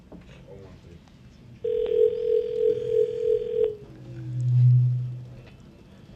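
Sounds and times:
long-distance telephone ringing tone: 1.6 - 3.9
soft low telephone tone: 1.6 - 5.8.

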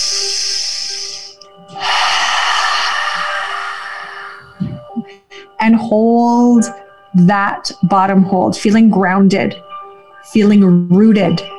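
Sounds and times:
deep breath in through the nose in a guided breathing exercise: 0.0 - 5.5
speech: 5.7 - 9.7, 10.3 - 11.5.

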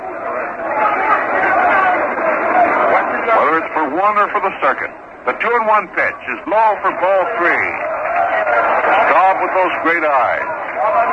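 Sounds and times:
baseball stadium crowd roaring: 0.0 - 11.1
speech: 3.9 - 7.9, 9.4 - 11.1.

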